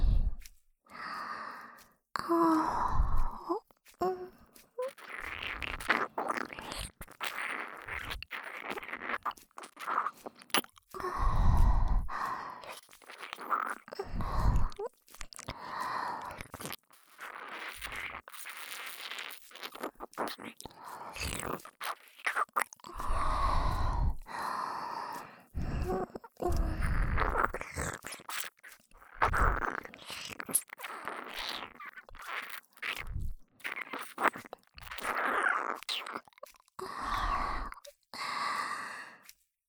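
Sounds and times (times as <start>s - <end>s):
wet slurping and licking mouth sounds on ear: 0.0s - 0.6s, 1.2s - 39.5s
soft breaths: 0.0s - 4.8s, 11.0s - 12.9s, 14.0s - 14.9s, 15.5s - 16.5s, 22.9s - 27.4s, 36.8s - 39.4s.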